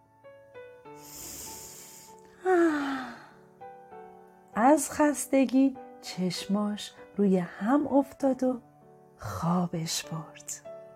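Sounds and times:
quiet music: 0:00.0 - 0:10.9
person voicing a rabbit's long deep breath: 0:01.0 - 0:03.5
speech: 0:04.8 - 0:10.7.

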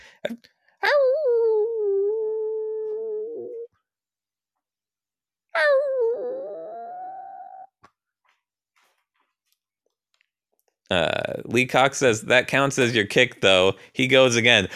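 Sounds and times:
speech: 0:00.2 - 0:01.1, 0:10.9 - 0:14.7
person howling in anger: 0:00.8 - 0:03.7, 0:05.6 - 0:07.7.

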